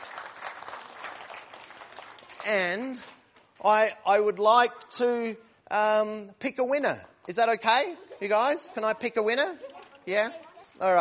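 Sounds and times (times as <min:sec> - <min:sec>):
children clapping after being praised for good behaviour: 0:00.0 - 0:03.2
speech: 0:02.4 - 0:10.9.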